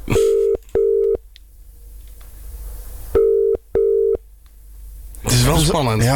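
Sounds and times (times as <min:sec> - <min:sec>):
telephone ringback tone while waiting for someone to answer: 0:00.2 - 0:01.2, 0:03.2 - 0:04.2
speech: 0:05.6 - 0:06.1.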